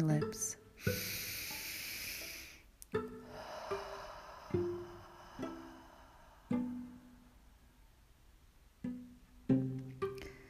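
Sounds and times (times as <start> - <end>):
soft slow plucked musical notes: 0.0 - 1.2, 2.8 - 7.9, 8.6 - 10.4
speech: 0.0 - 1.2
deep Ujjayi ocean breath in through nose and out through mouth: 0.7 - 7.8, 10.1 - 10.4.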